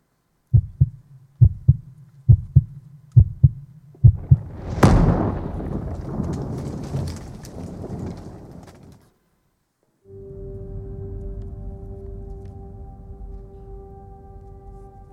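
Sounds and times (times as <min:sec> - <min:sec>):
deep heartbeat in double thumps: 0:00.6 - 0:04.5.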